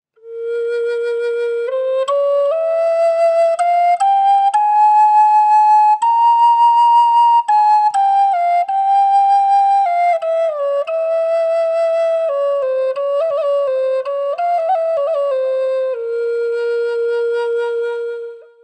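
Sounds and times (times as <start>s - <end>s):
Native oak medicine flute in A playing: 0.1s - 18.6s.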